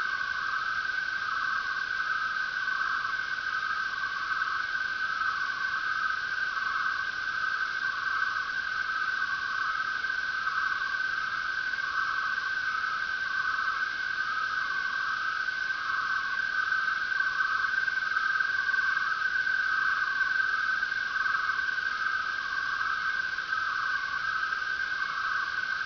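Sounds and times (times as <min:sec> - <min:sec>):
constant hiss: 0:00.0 - 0:25.8
crickets chirping in a dense chorus: 0:00.0 - 0:25.8.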